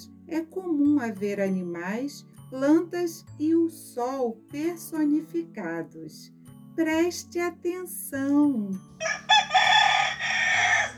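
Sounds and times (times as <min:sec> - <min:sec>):
speech: 0:00.3 - 0:09.2
rooster crowing: 0:09.0 - 0:10.9.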